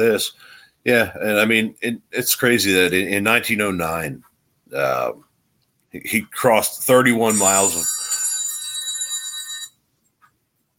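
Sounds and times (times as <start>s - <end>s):
speech: 0.0s - 5.3s, 5.9s - 8.0s
phone ringing with a bright buzzy electronic trill: 7.3s - 9.8s.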